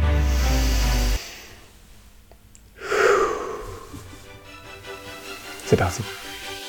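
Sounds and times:
deep breath in: 0:00.2 - 0:01.8, 0:02.7 - 0:04.3
speech: 0:05.7 - 0:06.3.

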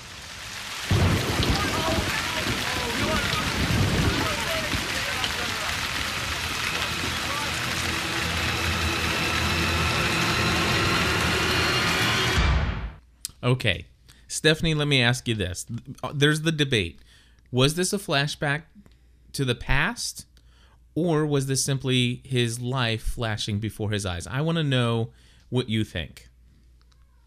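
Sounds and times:
heavy rain pouring: 0:00.0 - 0:12.4
deep thunder rumbling: 0:00.8 - 0:13.0
speech: 0:13.5 - 0:20.3, 0:21.0 - 0:26.3.

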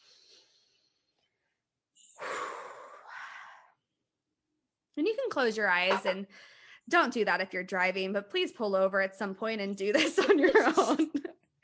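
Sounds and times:
deep breath in and out during a guided relaxation exercise: 0:02.0 - 0:03.8, 0:06.3 - 0:06.9
speech: 0:05.0 - 0:11.6
laughter: 0:10.0 - 0:11.3.

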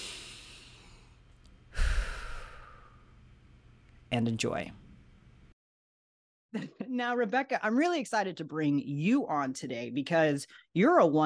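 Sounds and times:
gusty, sigh-like exhale: 0:00.0 - 0:03.0
deep breath: 0:00.0 - 0:03.1
speech: 0:04.1 - 0:04.8, 0:06.5 - 0:11.2.

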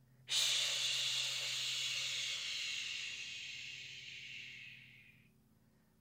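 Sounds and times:
slow breath in through the nose and out through the mouth in a guided breathing exercise: 0:00.3 - 0:05.9.

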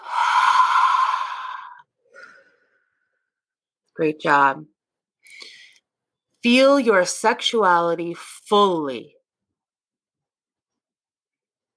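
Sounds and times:
deep cleansing breath during a guided relaxation exercise: 0:00.0 - 0:02.8
speech: 0:04.0 - 0:05.4, 0:06.4 - 0:09.2.

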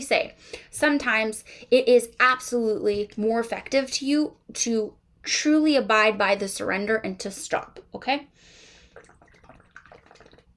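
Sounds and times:
speech: 0:00.0 - 0:08.6
sipping a drink of water: 0:08.5 - 0:10.5.

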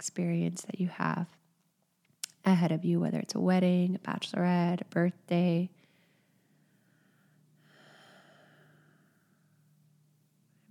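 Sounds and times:
speech: 0:00.0 - 0:01.4, 0:02.4 - 0:05.8
faint steady low hum: 0:00.0 - 0:10.6
slow deep exhale during guided meditation: 0:05.9 - 0:09.6.

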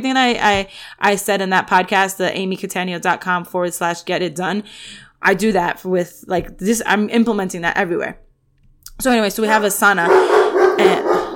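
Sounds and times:
speech: 0:00.0 - 0:08.2, 0:09.0 - 0:11.0
dog barking: 0:10.0 - 0:11.3.

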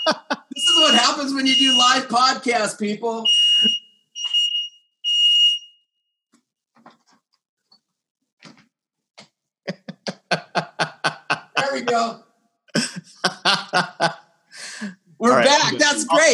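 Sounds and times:
laughter: 0:00.0 - 0:01.7, 0:09.7 - 0:12.2, 0:12.8 - 0:16.3
fire alarm beeps: 0:00.0 - 0:02.1, 0:03.2 - 0:05.8
speech: 0:00.1 - 0:03.8, 0:11.8 - 0:12.3, 0:13.2 - 0:14.2, 0:14.8 - 0:16.3.

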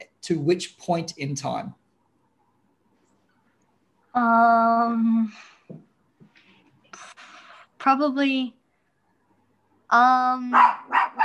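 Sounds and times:
speech: 0:00.3 - 0:01.8, 0:04.2 - 0:05.9, 0:07.8 - 0:08.6, 0:09.9 - 0:11.2
dog barking sharply: 0:10.5 - 0:11.2
dog howling bark: 0:10.6 - 0:11.2.

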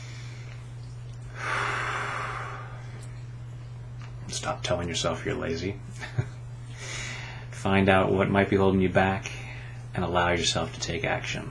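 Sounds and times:
steady low hum: 0:00.0 - 0:11.4
long deep breath during a tapping session: 0:01.3 - 0:03.0, 0:06.7 - 0:07.5
speech: 0:04.3 - 0:06.4, 0:07.6 - 0:09.4, 0:10.0 - 0:11.4.

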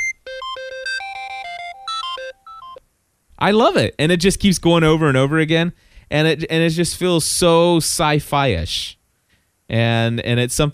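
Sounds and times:
electronic phone ringtone of bright stepped synthetic beeps: 0:00.0 - 0:02.8
speech: 0:03.4 - 0:09.0, 0:09.7 - 0:10.7.

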